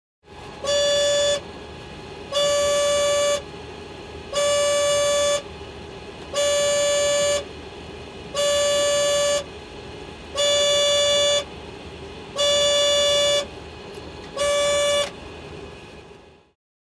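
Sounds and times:
baggage carousel machine beep: 0:00.6 - 0:01.5, 0:02.3 - 0:03.5, 0:04.3 - 0:05.5, 0:06.3 - 0:07.5, 0:08.3 - 0:09.5, 0:10.3 - 0:11.5, 0:12.3 - 0:13.6, 0:14.3 - 0:15.2.

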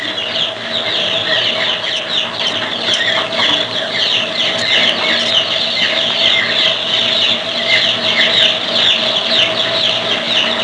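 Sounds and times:
farm chicks chirping: 0:00.0 - 0:10.6.

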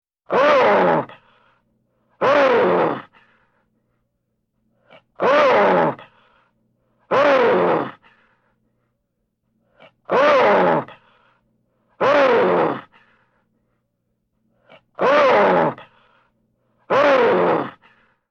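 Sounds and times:
human wolf argh: 0:00.3 - 0:01.4, 0:02.2 - 0:03.5, 0:04.8 - 0:06.3, 0:07.1 - 0:08.3, 0:09.7 - 0:11.2, 0:12.0 - 0:13.3, 0:14.6 - 0:16.2, 0:16.9 - 0:18.1.

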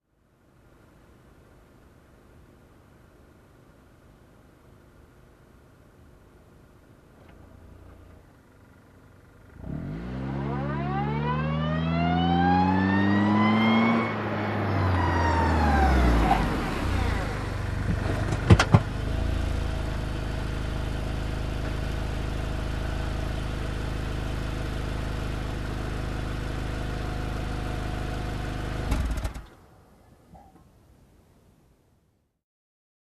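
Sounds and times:
car backing up and parking: 0:07.1 - 0:29.8.

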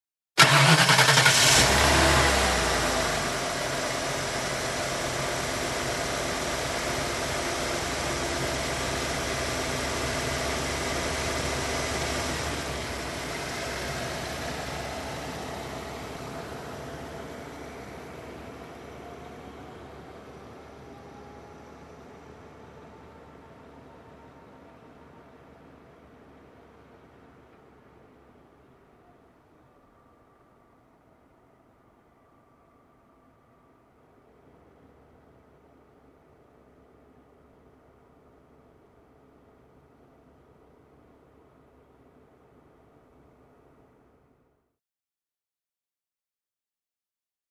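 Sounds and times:
pickup truck engine ignition: 0:00.4 - 0:25.8.

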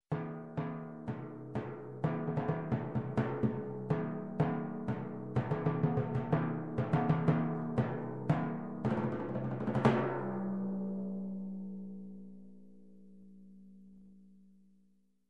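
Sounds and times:
timpani rhythm: 0:00.1 - 0:10.5.

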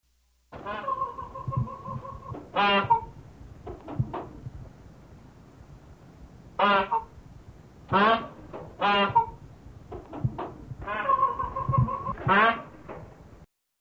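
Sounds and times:
peacock clucking: 0:00.6 - 0:04.4, 0:06.6 - 0:07.2, 0:07.9 - 0:13.0.

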